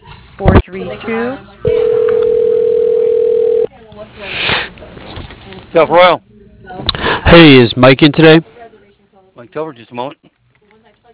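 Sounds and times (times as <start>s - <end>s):
speech: 0.4s - 1.6s, 5.7s - 6.3s, 7.2s - 8.5s, 9.4s - 10.3s
telephone tone: 1.7s - 3.7s.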